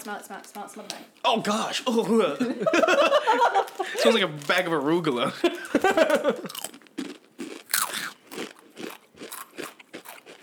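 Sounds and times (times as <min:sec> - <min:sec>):
speech: 0:00.0 - 0:06.6
laughter: 0:02.4 - 0:04.3, 0:05.2 - 0:06.6
people crunching and chewing while eating guacamole: 0:03.3 - 0:10.4.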